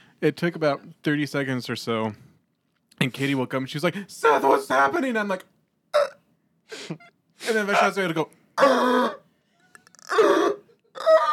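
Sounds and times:
speech: 0.2 - 2.3, 3.0 - 9.2
voice imitating desperate gasping for air: 8.6 - 11.3.

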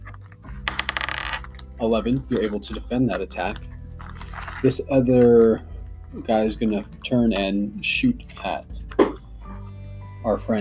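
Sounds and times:
dice rolled across a hard tabletop in a tabletop game: 0.6 - 1.7
speech: 1.8 - 3.7, 4.6 - 9.0, 10.2 - 10.5.

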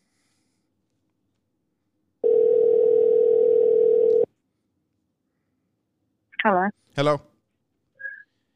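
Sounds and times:
electronic ringback tone on an outgoing phone call: 2.2 - 4.3
speech: 6.6 - 7.3.

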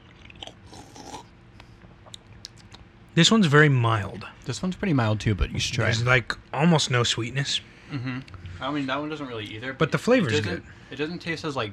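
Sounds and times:
person slurping a drink against the microphone: 0.2 - 1.3
lip smacks and mouth clicks: 2.0 - 2.9
speech: 3.2 - 11.7.

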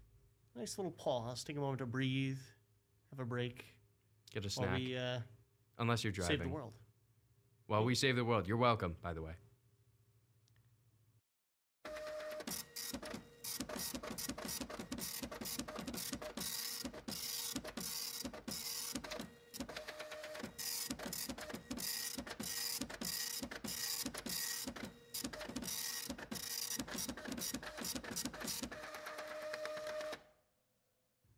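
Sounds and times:
speech: 0.6 - 6.8, 7.7 - 9.4
printer running with rapid mechanical clicks and whirring: 11.9 - 30.2.

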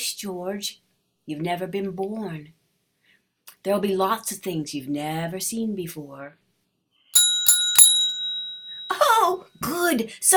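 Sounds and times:
speech: 0.1 - 2.6, 3.6 - 6.4, 9.3 - 10.3
small bell ringing: 7.1 - 9.5.

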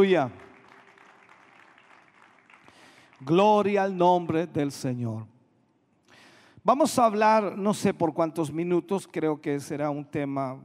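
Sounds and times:
speech: 0.0 - 0.5, 3.2 - 5.3, 6.6 - 10.6
audience applauding in praise during a church service: 0.0 - 3.4.

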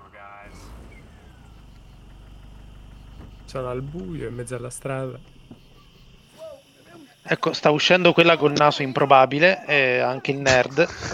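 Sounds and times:
broken-down car engine idling: 0.0 - 7.9
speech: 3.5 - 5.4, 7.3 - 11.1.

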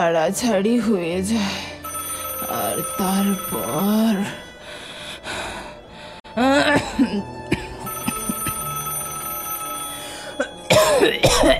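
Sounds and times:
speech: 0.0 - 1.8, 2.4 - 4.5, 6.4 - 7.4, 10.9 - 11.5
telephone ringing in a home: 1.8 - 5.2, 7.8 - 10.7.

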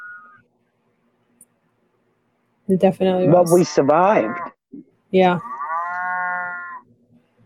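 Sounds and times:
speech: 2.7 - 4.4, 5.1 - 5.5
cow mooing with a long low call: 3.5 - 4.6, 5.4 - 6.9.

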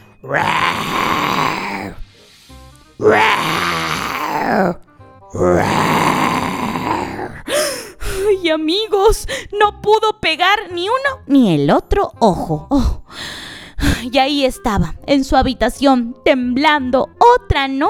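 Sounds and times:
speech: 0.2 - 1.0, 8.6 - 12.9, 14.1 - 17.8
lions roaring: 0.2 - 2.0, 3.0 - 7.4.

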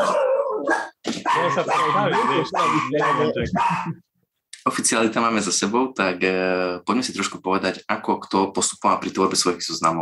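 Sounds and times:
dog barking with sharp yappy barks: 0.0 - 4.0
speech: 1.4 - 4.1, 4.7 - 10.0.

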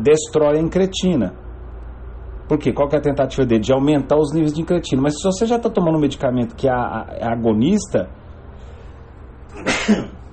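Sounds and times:
speech: 0.0 - 1.4, 2.5 - 8.2, 9.6 - 10.1
sneeze: 9.5 - 10.3.

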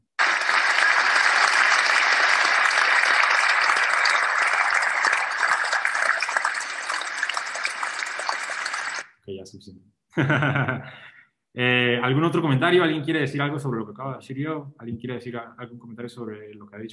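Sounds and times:
crowd applause: 0.0 - 9.0
speech: 9.4 - 16.9
laughter: 10.2 - 11.0.

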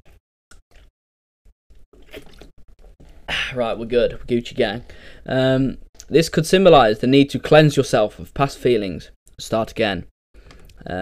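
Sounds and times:
person gulping and swallowing water: 1.7 - 3.6
speech: 3.5 - 10.1, 10.8 - 11.0.

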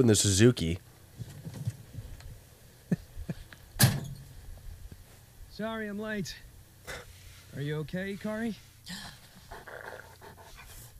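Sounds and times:
speech: 0.0 - 0.9, 5.6 - 7.0, 7.6 - 9.2
low hum: 0.0 - 10.9
dog wearing a cone panting: 9.3 - 10.9.

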